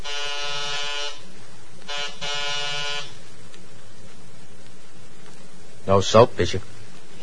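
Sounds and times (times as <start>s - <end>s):
apartment door buzzer ringing in harsh electric bursts: 0.0s - 1.3s, 1.9s - 3.2s
speech: 5.9s - 7.2s.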